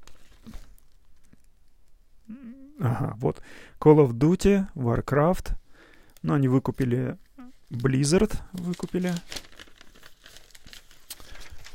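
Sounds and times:
papers rustling and crinkling: 0.0 - 1.4, 6.6 - 11.7
brief vocal sound: 2.3 - 3.2
speech: 2.8 - 5.6, 6.2 - 9.5.

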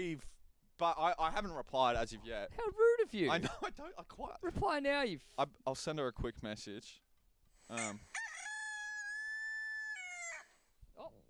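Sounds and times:
speech: 0.0 - 7.0, 7.7 - 8.2
rooster crowing: 7.7 - 10.7.

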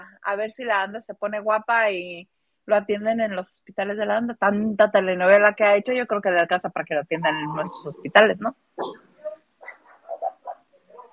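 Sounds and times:
speech: 0.2 - 9.1
small dog yipping and grunting: 8.8 - 11.1.

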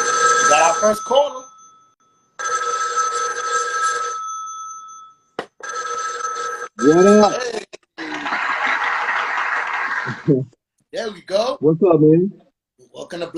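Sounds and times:
telephone ringing for an incoming caller: 0.0 - 7.4
speech: 0.8 - 1.4, 6.8 - 7.6, 10.3 - 12.4, 13.1 - 13.3
laughter: 7.3 - 10.5.

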